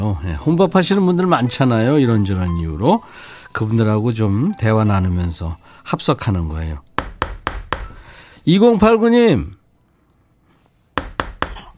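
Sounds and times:
speech: 0.1 - 6.9, 8.4 - 9.6
crisp knocks on a door: 7.0 - 8.0, 11.0 - 11.7.

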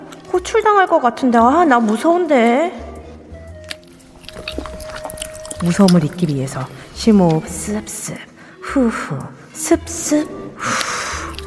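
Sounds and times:
speech: 0.4 - 2.8, 5.6 - 10.8
wet smacking and squishing of gum being chewed: 3.0 - 8.0, 10.2 - 11.4.

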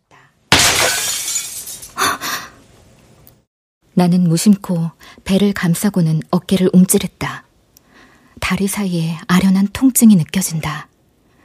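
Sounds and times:
picture frame falling to the floor with glass shattering: 0.5 - 2.0
tinkling glass debris: 0.6 - 2.0
speech: 4.0 - 7.4, 8.5 - 10.9.

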